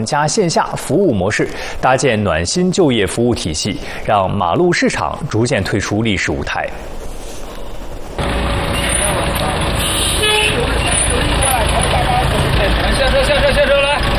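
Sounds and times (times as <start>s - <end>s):
speech: 0.0s - 7.1s
traffic rumble: 0.0s - 14.1s
idling engines of gig-worker buses parked at the gate: 5.7s - 14.1s
vehicle horns tooting: 8.2s - 12.0s
outdoor crowd murmuring and chattering at a day-labor market: 8.2s - 14.1s.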